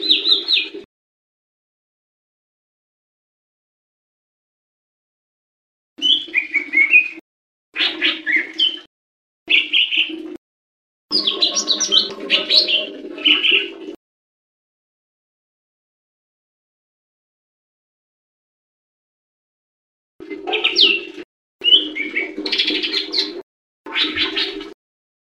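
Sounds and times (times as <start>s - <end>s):
leafbird chattering song: 0.0s - 0.7s, 6.0s - 7.2s, 7.8s - 8.9s, 9.5s - 10.2s, 11.1s - 13.7s, 20.5s - 24.6s.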